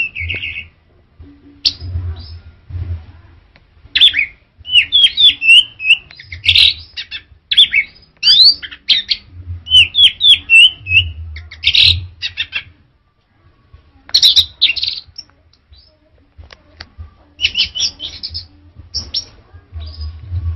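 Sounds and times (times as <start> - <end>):
orange-headed thrush song with whistled and slurred phrases: 0.0 - 0.8, 3.9 - 12.8, 14.1 - 16.0, 17.4 - 20.2
low background hum: 0.0 - 20.5.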